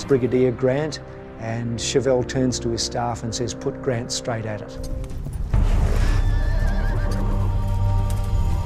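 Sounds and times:
speech: 0.1 - 5.2
hooves clip-clopping on the ground: 4.8 - 8.6
horse whinnying: 5.8 - 7.6.

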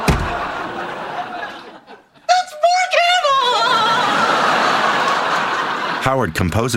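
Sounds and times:
front door slamming: 0.0 - 0.8
laughter: 0.0 - 2.3, 3.0 - 6.6
steady noise: 0.0 - 6.7
speech: 6.1 - 6.7.

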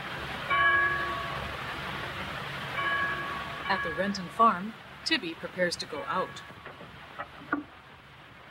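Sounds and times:
church bell ringing: 0.4 - 1.8, 2.7 - 4.7, 5.8 - 6.6
speech: 3.7 - 6.6.

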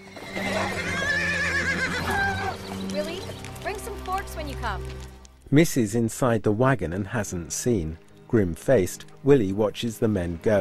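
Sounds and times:
horse whinnying as riders turn and ride away: 0.0 - 3.1
speech: 4.2 - 10.6.

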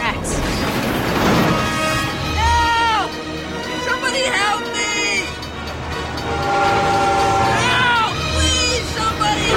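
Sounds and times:
Santa Fe train engine rumbling round a bend: 0.0 - 9.5
train horn-like tone: 6.0 - 8.5, 9.2 - 9.5.

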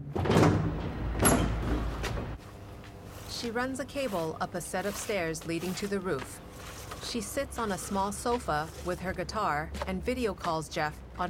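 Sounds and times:
doors pushed open with a scraping rattling rush: 0.0 - 2.4
speech: 3.4 - 11.2.

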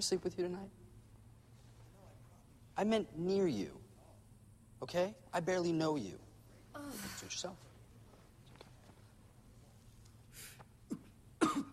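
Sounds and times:
speech: 0.0 - 0.9, 2.8 - 3.8, 4.8 - 7.7
man coughing on a cigarette: 10.9 - 11.7.

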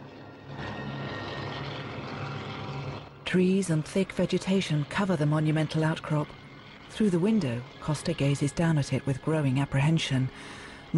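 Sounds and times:
helicopter engine and rotor droning while descending toward a plateau top: 0.0 - 10.9
speech: 3.3 - 10.9.

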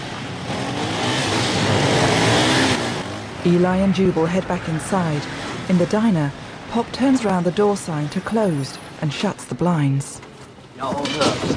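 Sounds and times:
motorbikes roaring past: 0.0 - 9.0
speech: 3.4 - 11.5.

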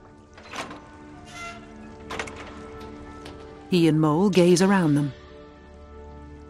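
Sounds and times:
metallic clunks and scrapes of a heavy submarine hatch being lifted open: 0.4 - 3.6
speech: 3.7 - 5.2.

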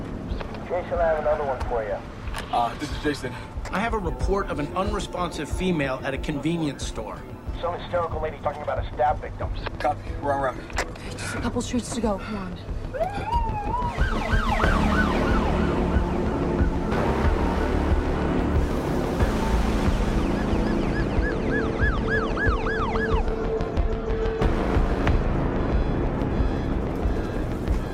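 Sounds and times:
ambulance engine and road noise: 0.0 - 27.9
speech: 0.7 - 14.4
ambulance siren wailing responding to a call at a convenience store: 12.8 - 18.1, 19.7 - 24.4.

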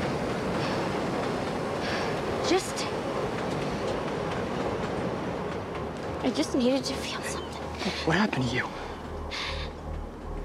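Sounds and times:
train speeding along the tracks with wheels rumbling on rails: 0.0 - 10.3
speech: 2.5 - 2.7, 6.3 - 8.8.

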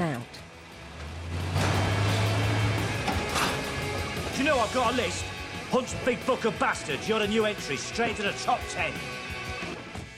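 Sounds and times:
rattling road noise: 0.4 - 5.6
old battered car engine roaring in a car wrecker's yard: 0.4 - 7.9
speech: 4.4 - 9.2.

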